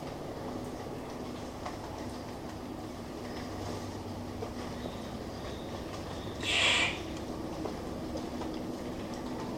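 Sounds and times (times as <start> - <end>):
low background hum: 0.0 - 9.5
Victoria's riflebird harsh rasping call: 6.4 - 7.1.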